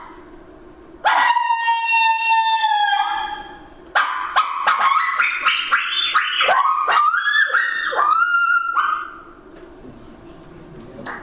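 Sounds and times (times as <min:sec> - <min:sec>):
coyote-style howl and yips made on a mouth call: 0:01.1 - 0:09.3.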